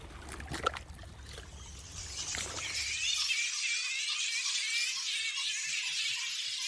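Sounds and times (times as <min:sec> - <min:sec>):
flying fox colony squeaking and chattering: 0:01.6 - 0:06.6.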